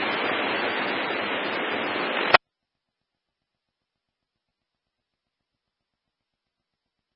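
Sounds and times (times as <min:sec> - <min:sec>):
water rushing from a fire hose being bled: 0:00.0 - 0:02.4.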